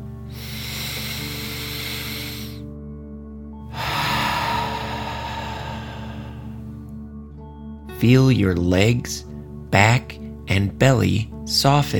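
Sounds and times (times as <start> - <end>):
deep breath in and out through the mouth: 0.1 - 2.8, 3.6 - 6.8
steady low tones: 3.7 - 6.8
speech: 8.0 - 11.9.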